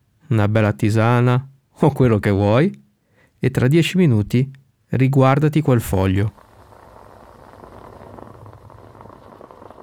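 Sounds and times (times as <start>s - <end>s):
speech: 0.3s - 2.8s, 3.4s - 6.4s
moka pot gurgling as coffee rises: 6.3s - 9.8s.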